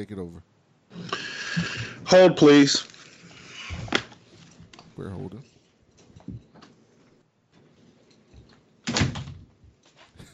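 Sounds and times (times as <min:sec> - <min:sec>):
speech: 0:00.0 - 0:02.9, 0:05.0 - 0:05.5
shuffling handling noises: 0:01.9 - 0:08.7
door swinging shut with a solid thud: 0:08.9 - 0:09.5.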